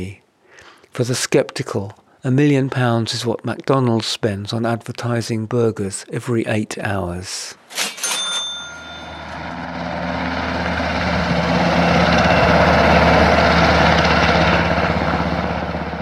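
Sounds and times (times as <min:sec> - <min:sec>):
speech: 0:00.0 - 0:00.2, 0:01.0 - 0:07.8
sharp metallic clang: 0:07.7 - 0:09.5
helicopter rotor blades roaring: 0:08.6 - 0:15.9.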